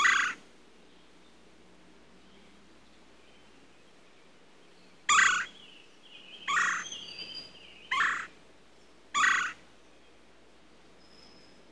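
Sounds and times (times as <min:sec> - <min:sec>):
woodpecker harsh squawks: 0:00.0 - 0:00.4, 0:05.1 - 0:05.5, 0:06.5 - 0:06.9, 0:07.9 - 0:08.3, 0:09.2 - 0:09.6.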